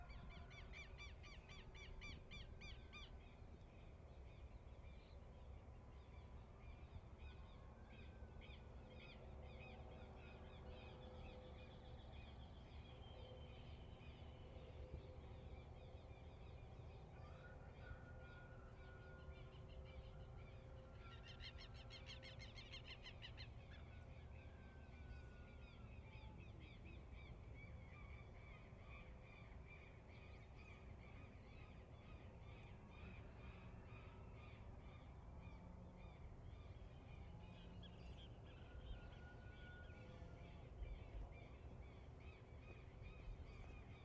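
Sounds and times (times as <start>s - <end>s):
outdoor countryside dawn ambience in Trinidad Uruguay: 0.0s - 44.0s.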